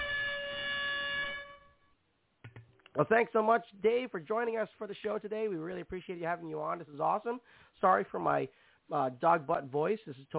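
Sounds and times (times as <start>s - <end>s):
air horn sound effect blast: 0.0s - 1.8s
speech: 3.0s - 10.3s.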